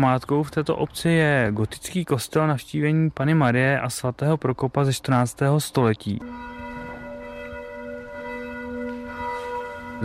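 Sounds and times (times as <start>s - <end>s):
speech: 0.0s - 6.5s
church bells ringing from a Gothic church belfry: 6.2s - 10.0s.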